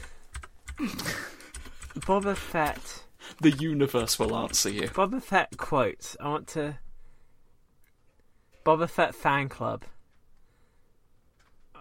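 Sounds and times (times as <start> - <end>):
typing on a computer keyboard: 0.0 - 5.7
speech: 2.1 - 6.8, 8.7 - 10.0.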